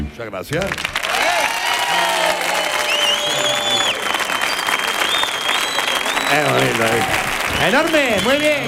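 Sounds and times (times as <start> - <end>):
speech: 0.2 - 2.1, 6.3 - 8.6
audience applause from a sizable crowd: 0.5 - 8.6
faint cheers: 1.0 - 8.6
whistles: 2.8 - 6.7, 7.4 - 8.4.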